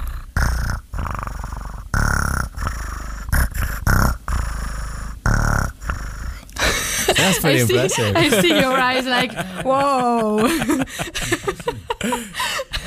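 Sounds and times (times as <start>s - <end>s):
person imitating a cat purring: 0.0s - 6.6s
laughter: 6.6s - 12.8s
speech: 7.2s - 12.6s.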